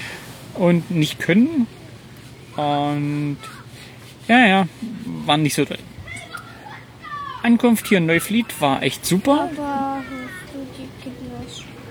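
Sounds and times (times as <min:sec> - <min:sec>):
speech: 0:00.6 - 0:01.8, 0:02.6 - 0:03.6, 0:04.3 - 0:05.9, 0:07.4 - 0:11.7
children shouting and calling out while playing: 0:03.4 - 0:03.8, 0:06.0 - 0:11.9.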